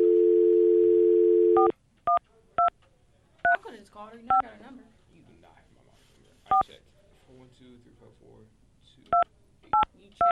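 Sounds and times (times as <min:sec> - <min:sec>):
telephone dial tone: 0:00.0 - 0:01.7
telephone keypad tones: 0:00.0 - 0:02.7
speech: 0:04.0 - 0:05.0, 0:06.5 - 0:10.3.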